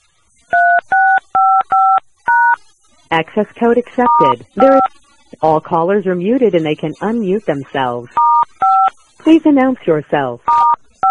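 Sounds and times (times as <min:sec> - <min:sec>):
telephone keypad tones entering an access code: 0:00.5 - 0:02.6, 0:04.0 - 0:04.9, 0:08.2 - 0:08.9, 0:10.5 - 0:11.0
speech: 0:03.1 - 0:08.2, 0:09.2 - 0:10.8.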